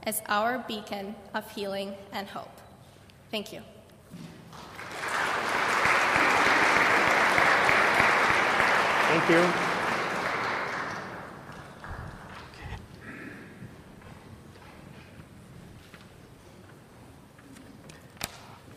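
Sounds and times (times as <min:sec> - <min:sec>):
speech: 0:00.0 - 0:02.7, 0:03.3 - 0:04.3, 0:09.1 - 0:09.7
audience applauding a speaker: 0:04.5 - 0:12.8.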